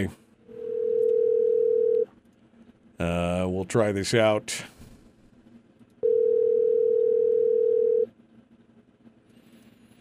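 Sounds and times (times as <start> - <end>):
speech: 0.0 - 0.2, 3.0 - 4.8
telephone ringing tone: 0.5 - 2.1, 6.0 - 8.1.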